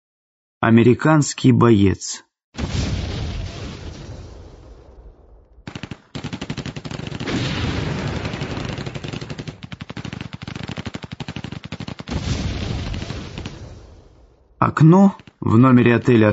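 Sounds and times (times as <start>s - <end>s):
speech: 0.6s - 2.7s, 14.8s - 16.3s
scattered single rifle shots at the front line: 2.6s - 16.2s
distant machine-gun fire at the front line at night: 5.6s - 14.4s, 15.0s - 15.4s.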